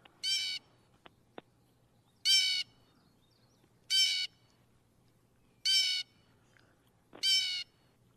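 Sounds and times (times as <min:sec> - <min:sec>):
blue jay giving harsh raspy calls: 0:00.2 - 0:00.8, 0:02.1 - 0:04.5, 0:05.6 - 0:06.3, 0:07.2 - 0:07.8.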